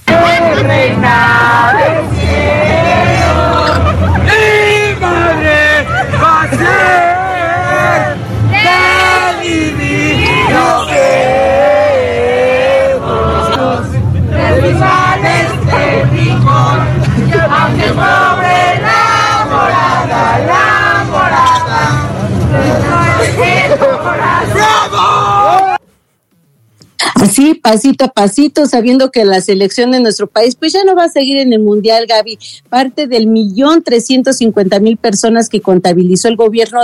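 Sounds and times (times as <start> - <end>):
football fans chanting and singing in unison: 0.0 - 25.6
speech: 27.4 - 36.8.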